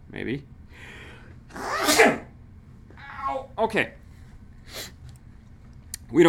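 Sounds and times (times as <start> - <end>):
speech: 0.1 - 2.2, 3.6 - 4.0
person sneezing loudly: 1.5 - 2.3.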